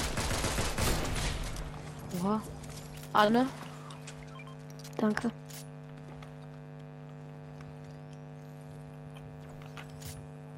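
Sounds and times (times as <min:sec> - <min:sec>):
rapid bursts of video game gunfire: 0:00.0 - 0:01.8
speech: 0:02.2 - 0:03.6, 0:05.0 - 0:05.4.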